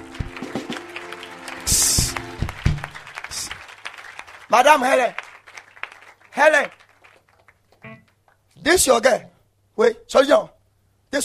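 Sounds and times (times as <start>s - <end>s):
audience clapping in a reverberant room: 0.0s - 8.4s
speech: 4.5s - 5.2s, 6.4s - 6.8s, 8.6s - 10.5s.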